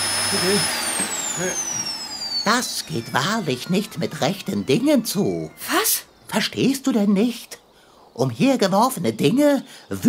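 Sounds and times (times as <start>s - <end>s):
vacuum cleaner running in a room: 0.0s - 6.1s
speech: 0.3s - 0.8s, 1.4s - 1.7s, 2.4s - 7.6s, 8.2s - 10.0s.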